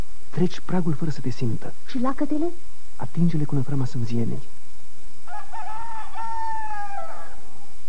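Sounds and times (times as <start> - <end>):
speech: 0.4 - 4.6
rooster crowing: 5.2 - 7.8.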